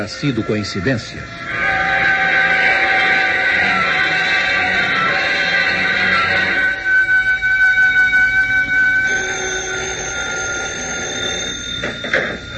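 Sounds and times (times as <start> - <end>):
speech: 0.0 - 1.6
telephone ringing in the middle of the night: 1.6 - 12.5.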